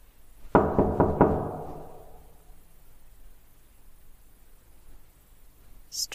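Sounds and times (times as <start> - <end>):
knocking on a wooden door: 0.5 - 2.3.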